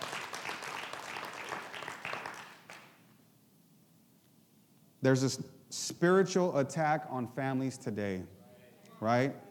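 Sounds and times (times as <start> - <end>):
crowd clapping: 0.0 - 3.0
speech: 5.0 - 8.4, 9.0 - 9.4.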